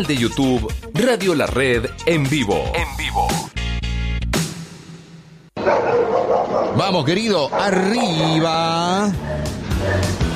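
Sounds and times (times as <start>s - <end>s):
speech: 0.0s - 3.4s, 6.8s - 10.2s
dogs barking: 5.6s - 10.3s.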